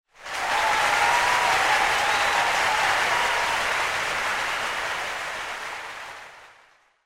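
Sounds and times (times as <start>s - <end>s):
crowd cheering: 0.1s - 6.9s.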